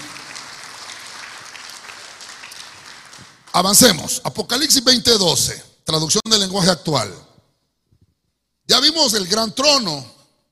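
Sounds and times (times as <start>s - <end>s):
audience clapping loudly: 0.0s - 4.2s
speech: 3.6s - 7.3s, 8.7s - 10.2s.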